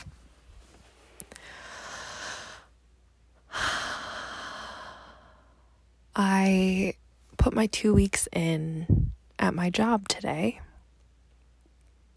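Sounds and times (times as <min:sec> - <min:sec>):
deep breathing: 0:01.3 - 0:02.7, 0:03.5 - 0:05.8
speech: 0:06.2 - 0:10.6.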